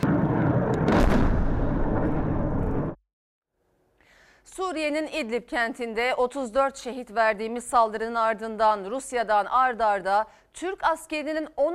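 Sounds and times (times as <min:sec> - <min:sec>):
multiple rocket launchers firing on regime forces: 0:00.0 - 0:03.0
speech: 0:04.7 - 0:11.7.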